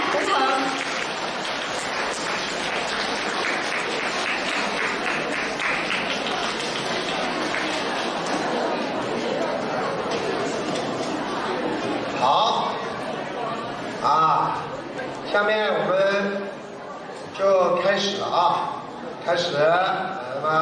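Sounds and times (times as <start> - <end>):
large audience applauding to welcome a speaker: 0.0 - 9.3
murmur of crowd voices: 0.0 - 20.5.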